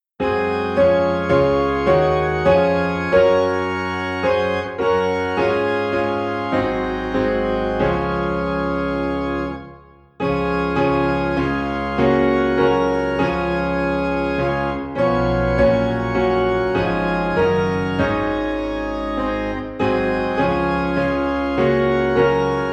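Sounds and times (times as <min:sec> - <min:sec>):
piano in D flat: 0:00.0 - 0:22.7
organ in D flat: 0:00.2 - 0:22.7.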